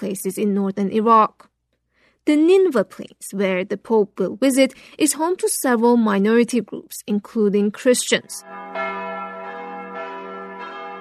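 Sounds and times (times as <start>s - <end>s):
speech: 0.0s - 1.5s, 2.2s - 8.8s
church bells chiming at a church in Mosul, northern Iraq: 8.4s - 10.9s.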